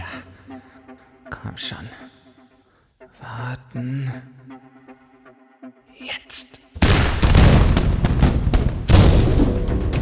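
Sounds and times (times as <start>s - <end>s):
speech: 1.5s - 2.1s, 3.3s - 4.4s, 6.0s - 6.6s
heavy cannon fire blasts: 6.8s - 9.9s.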